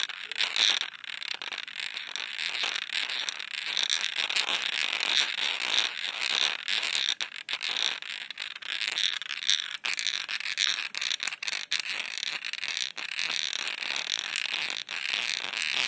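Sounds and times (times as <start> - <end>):
glass nail polish bottles rubbed together, grinding and scraping: 0.0 - 15.8.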